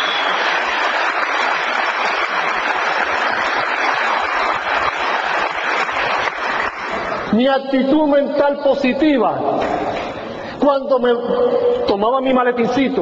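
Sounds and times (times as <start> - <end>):
audience applause at a live talk: 0.0 - 7.3
speech: 7.4 - 9.7, 10.6 - 13.0.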